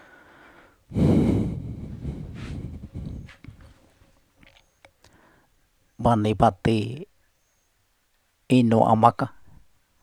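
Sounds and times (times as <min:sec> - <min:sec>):
tapir snorting: 0:01.1 - 0:04.6
speech: 0:06.0 - 0:07.1, 0:08.5 - 0:09.4.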